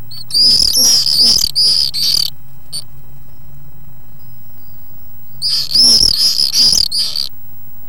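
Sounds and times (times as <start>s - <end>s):
swift calls: 0.1s - 2.3s, 5.4s - 7.3s.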